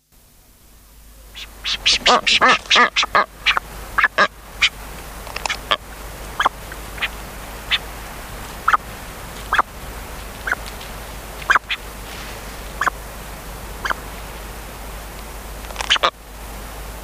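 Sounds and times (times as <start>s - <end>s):
background hiss: 0.0s - 17.0s
brown booby harsh quack-like calls: 1.3s - 4.8s, 5.4s - 7.9s, 8.6s - 8.9s, 9.5s - 9.8s, 10.4s - 10.6s, 11.4s - 11.8s, 12.8s - 13.0s, 13.8s - 14.0s, 15.8s - 16.2s.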